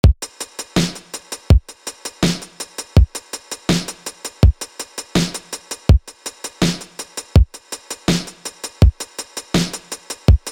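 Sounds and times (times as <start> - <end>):
kick drum: 0.0 - 0.3, 5.9 - 6.1, 7.4 - 7.6, 10.3 - 10.5
hi-hats: 0.2 - 10.5
snare drum: 0.3 - 10.5.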